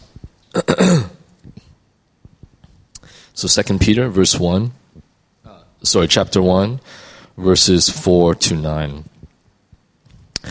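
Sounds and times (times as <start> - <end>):
person coughing quiet throaty coughs: 0.5 - 1.2
person clearing throat with a rough, forceful burst: 0.5 - 1.3
speech: 3.4 - 4.8, 5.8 - 9.1.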